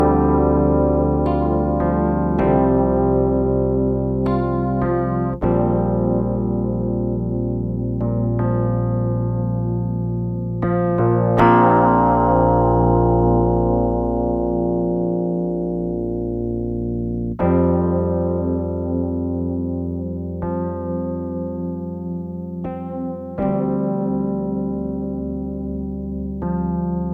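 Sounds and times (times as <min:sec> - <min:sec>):
electric piano: 0:00.0 - 0:27.1.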